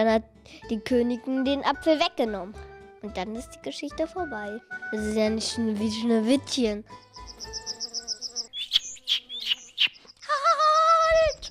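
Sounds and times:
speech: 0.0s - 7.7s
bird chirping with thin high tweets and a warbling trill: 6.9s - 11.4s.

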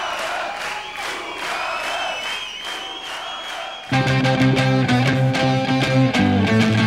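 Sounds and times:
large concert crowd applauding and cheering: 0.0s - 6.2s
loud band music: 3.9s - 6.8s.

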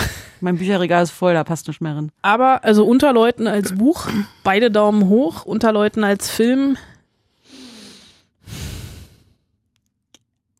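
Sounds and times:
speech: 0.4s - 6.9s
heavy breaths blown straight into the microphone: 7.3s - 9.4s.

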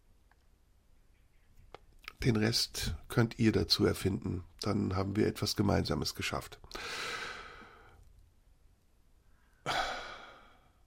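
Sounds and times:
speech: 2.2s - 7.2s
breathy exhalations: 6.7s - 8.0s, 9.4s - 10.8s.

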